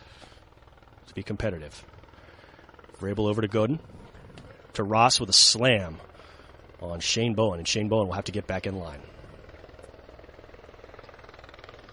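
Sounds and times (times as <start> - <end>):
helicopter rotor whirring as it lands at a football event: 0.0 - 11.9
speech: 1.2 - 2.0, 3.0 - 4.0, 4.8 - 6.1, 6.8 - 9.2.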